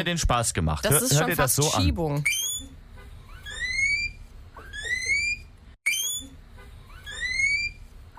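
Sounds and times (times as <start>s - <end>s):
speech: 0.0s - 2.6s
guinea pig giving rising whistles: 2.2s - 8.1s.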